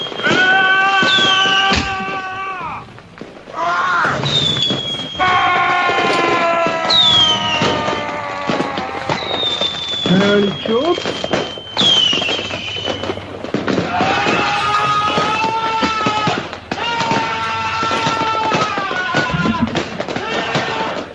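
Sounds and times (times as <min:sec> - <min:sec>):
fireworks crackling and popping bursts: 0:00.0 - 0:21.1
whistling firework rockets: 0:00.0 - 0:21.1.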